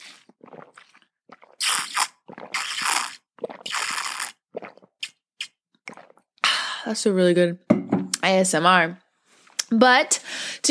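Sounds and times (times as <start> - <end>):
person slurping water: 0.0 - 6.4
speech: 6.8 - 9.0, 9.7 - 10.6.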